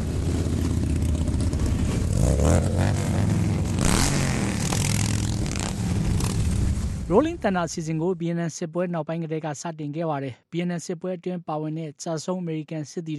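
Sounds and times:
thousands of motorcycles rumbling through a city in a memorial rally: 0:00.0 - 0:07.1
speech: 0:07.1 - 0:13.1.

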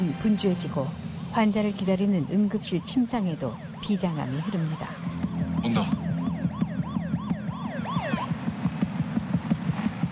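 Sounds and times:
rhythmic thumps: 0:00.0 - 0:10.0
speech: 0:00.1 - 0:06.1
ambulance siren yelping in rising-and-falling sweeps: 0:01.4 - 0:09.3.

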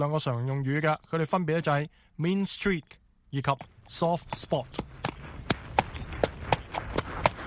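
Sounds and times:
speech: 0:00.0 - 0:05.3
horse hooves clip-clopping as riders walk their horses: 0:03.4 - 0:07.4.

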